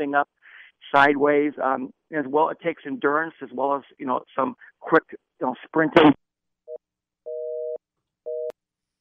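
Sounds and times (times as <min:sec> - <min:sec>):
speech: 0:00.0 - 0:06.2
telephone busy tone after a dropped call: 0:07.3 - 0:08.6.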